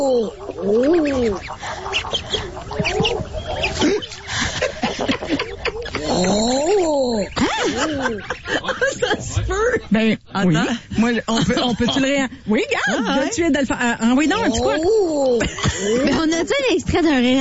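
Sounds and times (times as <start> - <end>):
speech: 0.0 - 2.2, 9.8 - 17.3
chorus of common eider ducks calling: 0.0 - 8.8
laughter: 0.0 - 9.9, 10.7 - 13.3, 14.2 - 16.8
busy natural noise: 0.0 - 17.3.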